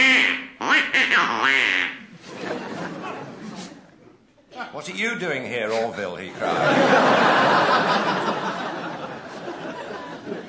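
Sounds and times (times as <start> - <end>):
nasal duck-like quacking voice: 0.0 - 2.1
laughter: 2.1 - 4.2, 6.3 - 10.4
speech: 4.7 - 8.3.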